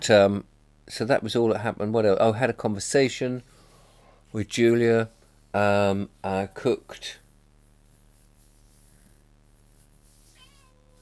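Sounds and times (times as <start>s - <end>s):
speech: 0.0s - 3.6s, 4.3s - 7.2s
steady low electrical hum: 0.0s - 11.0s
cat meowing: 10.2s - 11.0s.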